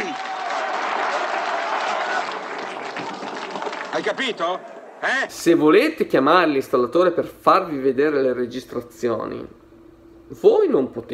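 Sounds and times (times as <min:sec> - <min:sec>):
faint voices and cheers: 0:00.0 - 0:05.1
large crowd applauding: 0:00.0 - 0:05.3
speech: 0:04.0 - 0:09.6, 0:10.3 - 0:11.1.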